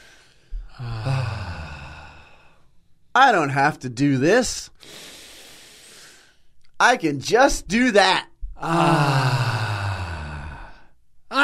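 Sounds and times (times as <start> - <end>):
deep exhale during a calm guided relaxation: 0.0 - 2.7, 4.8 - 6.4, 8.6 - 11.0
speech: 0.8 - 1.1, 3.2 - 5.1, 6.8 - 9.4.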